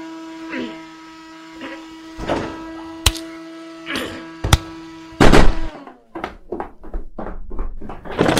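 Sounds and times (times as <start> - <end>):
vacuum cleaner running: 0.0 - 6.2.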